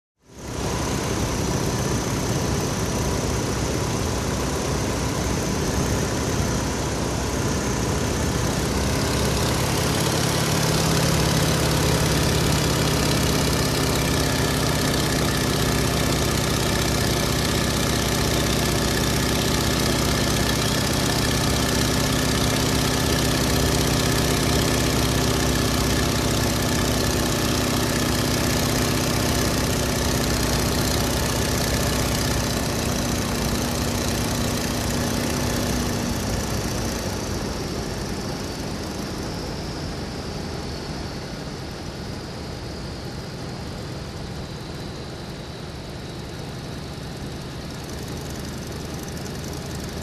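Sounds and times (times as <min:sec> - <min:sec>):
light aircraft airscrew noise near: 0:00.2 - 0:50.0.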